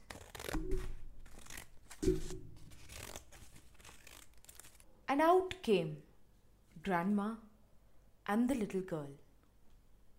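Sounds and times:
scissors cutting through material: 0.0 - 4.8
speech: 5.1 - 6.1, 6.8 - 7.5, 8.2 - 9.2.

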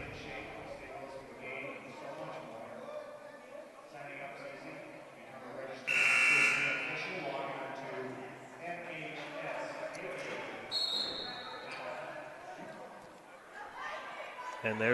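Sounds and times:
crowd noise in a busy gymnasium: 0.0 - 14.9
timeout horn in a gymnasium: 5.9 - 7.0.

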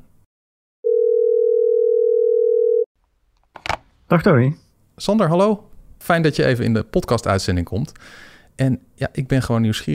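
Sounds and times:
phone ringing tone during a call: 0.8 - 2.9
speech: 4.1 - 9.9.

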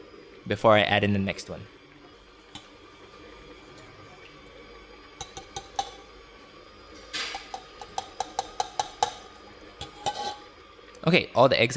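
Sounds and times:
electric mixer beating eggs into burnt cheesecake batter: 0.0 - 10.9
speech: 0.5 - 1.8, 11.1 - 11.7
mixer beaters clacking against the bowl: 5.2 - 6.0, 7.2 - 10.4.

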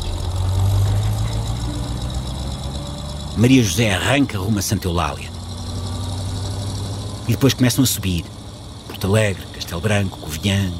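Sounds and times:
getaway car engine idling with a faint rattling knock: 0.0 - 10.7
speech: 3.4 - 5.3, 7.3 - 10.7.

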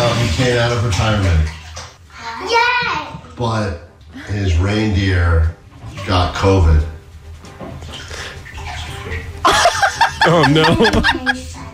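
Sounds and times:
water sloshing in a bathtub: 0.0 - 11.7
speech: 0.4 - 1.6, 2.4 - 6.9, 10.2 - 11.7
laughter: 9.4 - 11.6.

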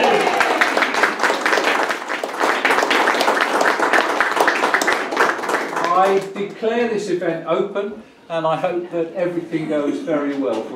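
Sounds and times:
large crowd clapping and cheering: 0.0 - 6.5
speech: 6.1 - 10.7.

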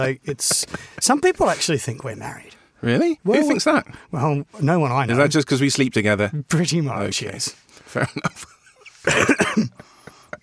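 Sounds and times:
speech: 0.0 - 9.9
person coughing: 9.0 - 9.9.

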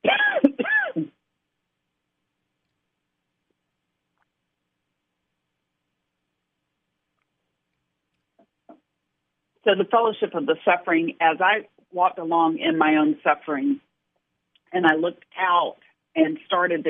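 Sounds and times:
throaty coughs: 0.1 - 1.1
speech: 9.7 - 13.9, 14.7 - 16.8.

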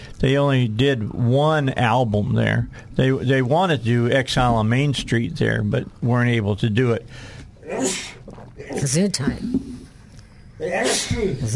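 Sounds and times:
speech: 0.2 - 9.7, 10.6 - 11.5
person sneezing: 7.6 - 8.8, 10.6 - 11.4.

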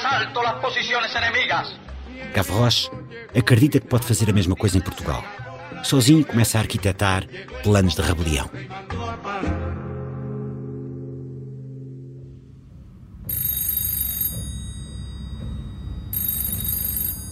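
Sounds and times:
speech: 0.2 - 9.8
telephone ringing: 13.2 - 17.3.

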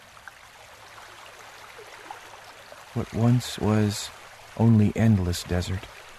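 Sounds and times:
stream water flowing: 0.0 - 6.1
speech: 3.0 - 6.0.

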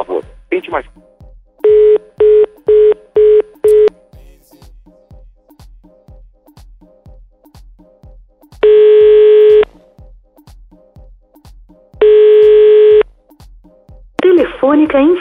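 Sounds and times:
speech: 0.0 - 1.1, 14.7 - 15.1
long steady telephone ringing tones: 1.6 - 3.9, 8.6 - 9.7, 12.0 - 13.0
telephone keypad dialing beeps: 1.6 - 3.9, 8.6 - 9.7, 12.0 - 13.0.

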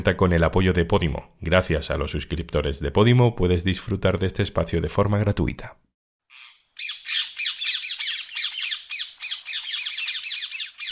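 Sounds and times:
speech: 0.0 - 5.9
parrots or parakeets squawking: 6.3 - 10.9.

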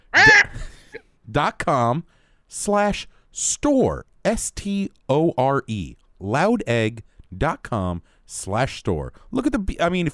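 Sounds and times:
person imitating a chicken clucking: 0.0 - 0.6
speech: 1.3 - 10.1.

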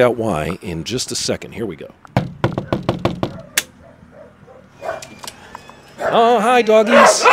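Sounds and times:
speech: 0.0 - 2.4, 6.1 - 7.3
knocking on a house door: 2.2 - 3.5.

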